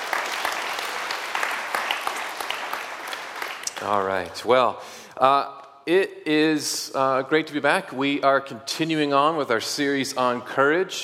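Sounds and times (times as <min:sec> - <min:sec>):
audience clapping: 0:00.0 - 0:04.7
speech: 0:03.8 - 0:11.0.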